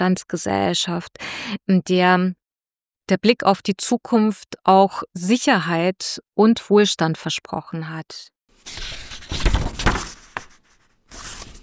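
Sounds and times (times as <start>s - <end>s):
speech: 0.0s - 2.4s, 3.1s - 9.0s
paper booklet pages being leafed through: 8.6s - 11.6s.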